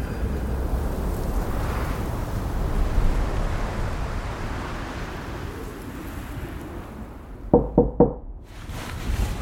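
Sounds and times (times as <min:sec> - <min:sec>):
wind roaring: 0:00.0 - 0:09.4
knocking on a door: 0:07.6 - 0:08.2.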